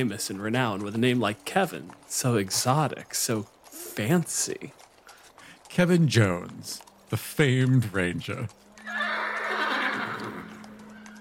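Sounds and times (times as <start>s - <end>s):
speech: 0.0s - 4.8s, 5.7s - 8.6s
horse hooves clip-clopping: 0.0s - 11.2s
horse neighing: 8.8s - 11.2s.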